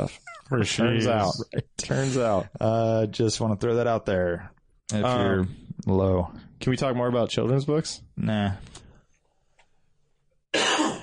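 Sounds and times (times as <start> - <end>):
speech: 0.0 - 8.8
harsh cough: 10.5 - 11.0.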